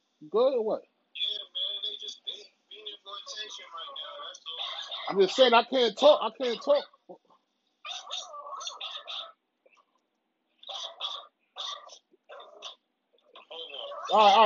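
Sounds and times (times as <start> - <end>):
speech: 0.2 - 1.3, 5.1 - 7.2, 14.1 - 14.4
dogs barking: 4.5 - 5.2, 7.9 - 9.4, 10.6 - 12.8.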